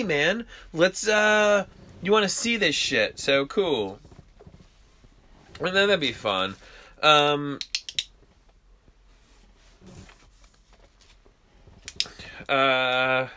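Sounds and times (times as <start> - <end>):
speech: 0.0 - 4.1, 5.6 - 7.7, 12.5 - 13.3
ballpoint pen clicking: 7.6 - 8.1.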